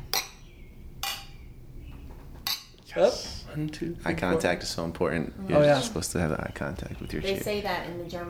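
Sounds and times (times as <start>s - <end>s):
glasses clinking in a toast: 0.1s - 1.3s, 2.4s - 2.8s
speech: 2.9s - 8.2s.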